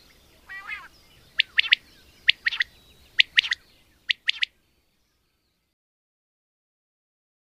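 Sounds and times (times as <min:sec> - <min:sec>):
common quail song: 0:00.0 - 0:04.6.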